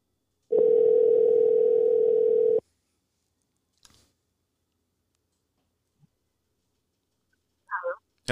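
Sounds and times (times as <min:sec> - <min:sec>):
telephone dial tone while placing a call: 0:00.5 - 0:02.6.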